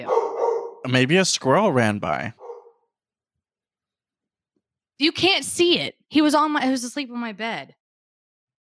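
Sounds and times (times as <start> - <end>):
dog barking indoors: 0.0 - 0.9, 2.3 - 2.8
speech: 0.8 - 2.4, 5.0 - 7.8.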